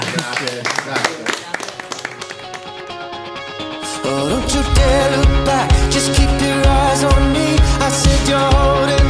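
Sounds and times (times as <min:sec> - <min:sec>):
small crowd clapping: 0:00.0 - 0:03.0
sustained musical tones: 0:02.7 - 0:07.4
speech: 0:04.1 - 0:09.0.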